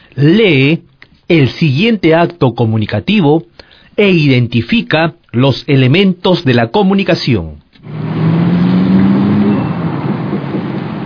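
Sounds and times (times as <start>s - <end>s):
speech: 0.2s - 8.0s
car engine revving up with rising hum: 7.8s - 11.0s
dense rumble of heavy traffic: 7.8s - 11.0s.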